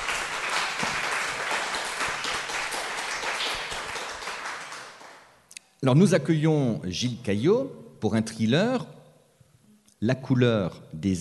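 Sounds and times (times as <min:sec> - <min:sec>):
audience applauding: 0:00.0 - 0:05.3
speech: 0:05.8 - 0:09.0, 0:10.0 - 0:11.2.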